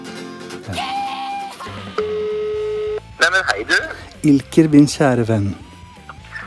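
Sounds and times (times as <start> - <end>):
speech: 0.7 - 1.0, 3.2 - 5.7
electronic phone ringing tones of an outgoing call: 1.9 - 4.9.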